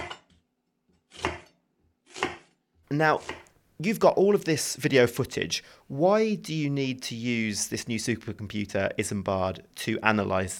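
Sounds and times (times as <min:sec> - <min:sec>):
knife slicing through an onion: 0:01.0 - 0:03.5
speech: 0:02.9 - 0:10.5.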